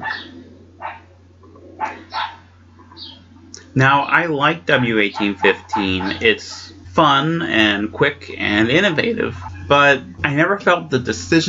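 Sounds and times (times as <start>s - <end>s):
small puppies yapping and barking: 0.0s - 1.1s, 1.7s - 3.2s, 4.7s - 6.7s
steady low hum: 0.0s - 11.4s
speech: 3.8s - 11.4s.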